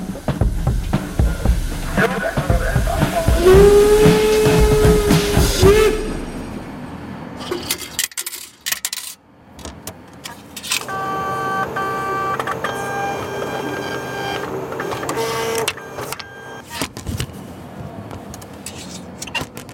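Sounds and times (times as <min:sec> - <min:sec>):
ticket vending machine whirring and buzzing: 0:00.0 - 0:06.8, 0:10.7 - 0:16.7
ticket vending machine mechanical clunks: 0:10.6 - 0:16.6
ticket vending machine electronic tones: 0:10.8 - 0:16.6.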